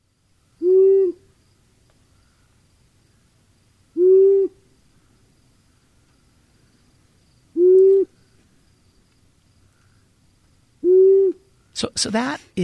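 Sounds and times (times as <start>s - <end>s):
male long-eared owl hooting: 0.6s - 1.4s, 3.9s - 5.1s, 7.5s - 8.4s, 10.8s - 11.8s
speech: 11.8s - 12.6s.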